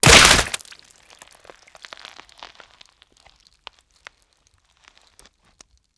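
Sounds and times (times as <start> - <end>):
debris falling: 0.0 - 2.6
gore splatter: 0.0 - 3.3.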